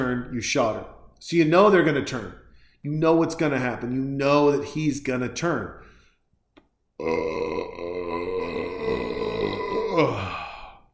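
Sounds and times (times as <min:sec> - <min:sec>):
speech: 0:00.0 - 0:05.9, 0:07.0 - 0:07.8
long deep gravelly burp: 0:07.0 - 0:10.8.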